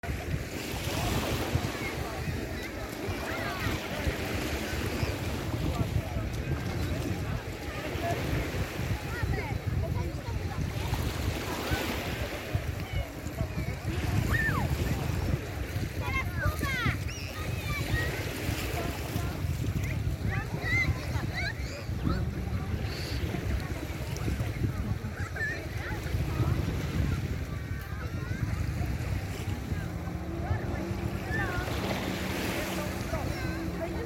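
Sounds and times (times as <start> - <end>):
sea waves: 0.0 - 34.0.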